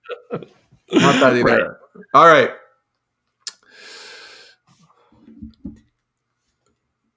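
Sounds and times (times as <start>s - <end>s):
laughter: 0.1s - 1.6s
speech: 0.3s - 2.6s
sharp lip smack: 3.5s - 3.7s
long breathy exhale: 3.7s - 4.6s.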